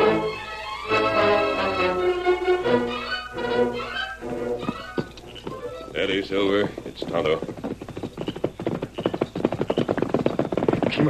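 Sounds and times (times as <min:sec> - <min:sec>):
horse with rider clip-clopping along a trail: 0:01.4 - 0:11.0
speech: 0:06.1 - 0:07.5.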